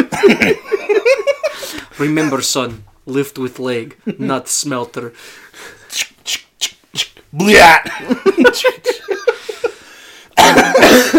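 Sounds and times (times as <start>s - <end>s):
laughter: 0.0s - 2.5s, 7.8s - 9.8s, 10.4s - 11.1s
speech: 0.2s - 0.7s, 2.0s - 9.1s
person coughing in rasping hacks: 10.4s - 11.1s.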